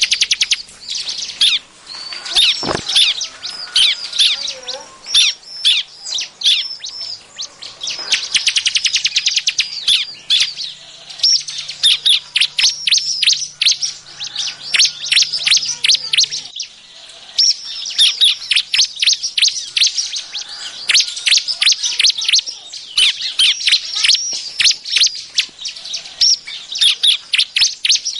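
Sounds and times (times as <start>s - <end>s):
bar-winged prinia chirping: 0.0s - 28.1s.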